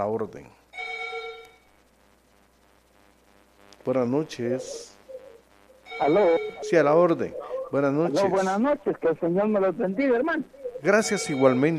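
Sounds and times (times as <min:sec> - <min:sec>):
speech: 0:00.0 - 0:00.6, 0:03.8 - 0:05.0, 0:06.0 - 0:11.7
telephone ringing with an incoming call on a radio call-in line: 0:00.8 - 0:01.7, 0:05.8 - 0:08.7, 0:10.6 - 0:11.7.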